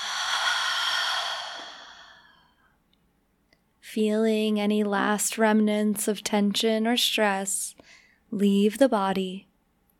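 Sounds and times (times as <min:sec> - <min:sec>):
long deep breath exhaled through the mouth during a guided meditation: 0:00.0 - 0:02.6
speech: 0:03.9 - 0:09.5.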